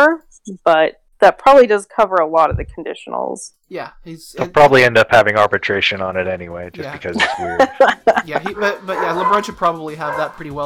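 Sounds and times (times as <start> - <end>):
speech: 0.1 - 10.6
people laughing: 6.8 - 9.5
dog barking: 8.5 - 10.5.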